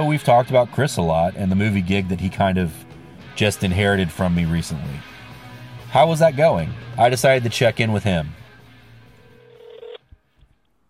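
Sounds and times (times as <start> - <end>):
speech: 0.0 - 5.2, 5.9 - 8.4
phone dialing tone over a speakerphone: 9.2 - 10.0.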